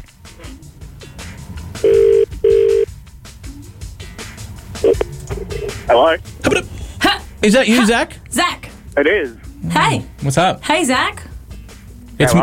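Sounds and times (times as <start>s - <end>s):
phone line ringing in paired tones: 1.9s - 2.9s
speech: 5.9s - 6.7s, 7.4s - 11.3s, 12.2s - 12.3s.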